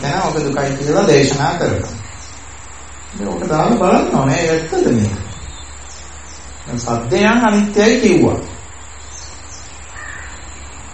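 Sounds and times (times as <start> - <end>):
steady broadband hiss: 0.0 - 10.9
speech: 0.1 - 2.0, 3.1 - 5.3, 6.7 - 8.5
crow cawing: 9.5 - 10.5.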